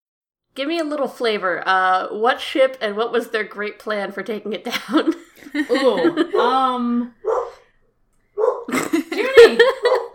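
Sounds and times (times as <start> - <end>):
speech: 0.6 - 7.4
laughter: 4.7 - 6.8, 8.7 - 10.1
female dog barking: 6.3 - 7.7, 8.4 - 8.7, 9.7 - 10.1.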